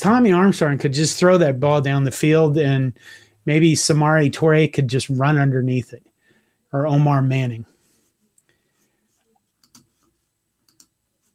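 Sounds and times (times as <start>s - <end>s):
speech: 0.0s - 6.1s, 6.7s - 7.7s
computer mouse clicks: 9.3s - 11.0s.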